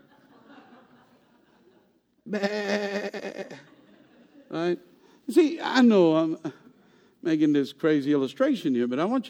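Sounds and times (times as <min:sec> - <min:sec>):
laughter: 0:00.0 - 0:02.1, 0:03.2 - 0:04.8
speech: 0:02.3 - 0:03.4, 0:04.6 - 0:06.6, 0:07.2 - 0:09.2
sheep bleating: 0:02.3 - 0:03.7.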